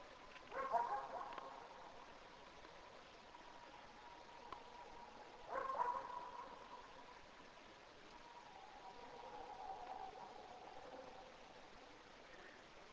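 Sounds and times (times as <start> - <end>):
low steady hiss: 0.0 - 12.9
dog barking: 0.5 - 1.7, 5.5 - 6.6.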